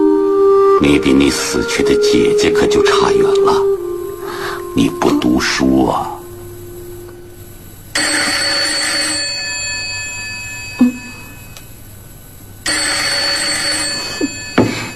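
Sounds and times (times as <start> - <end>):
speech: 0.8 - 3.7, 4.8 - 6.1
old-fashioned telephone bell ringing: 8.0 - 11.9, 12.6 - 14.9.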